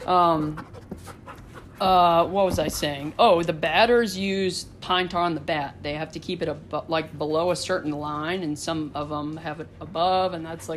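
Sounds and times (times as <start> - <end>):
dog panting excitedly in a living room: 0.0 - 3.1
speech: 0.1 - 1.2, 1.8 - 10.7.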